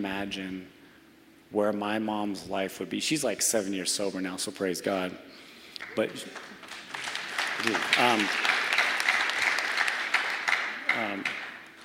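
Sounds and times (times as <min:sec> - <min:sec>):
speech: 0:00.0 - 0:00.8, 0:01.5 - 0:06.6, 0:07.6 - 0:08.5, 0:11.0 - 0:11.4
audience clapping through a live talk: 0:05.8 - 0:11.8.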